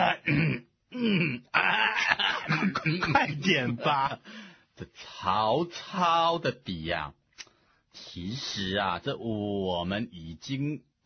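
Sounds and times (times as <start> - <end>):
person clearing throat: 0.0 - 3.5
laughter: 1.6 - 4.2
speech: 3.5 - 7.2, 8.0 - 11.0.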